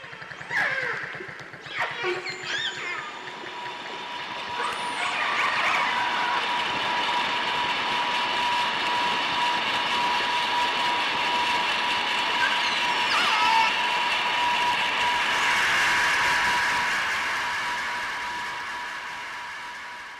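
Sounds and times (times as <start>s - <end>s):
faint dolphin whistles and clicks underwater: 0.0s - 6.6s, 12.2s - 13.8s
passing boat engine droning underwater: 0.0s - 20.1s.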